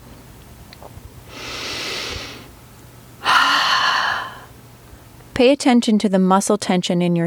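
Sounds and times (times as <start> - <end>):
slow deep exhale through a wide-open mouth as a breathing technique: 1.3 - 2.5, 3.2 - 4.5
speech: 5.4 - 7.2.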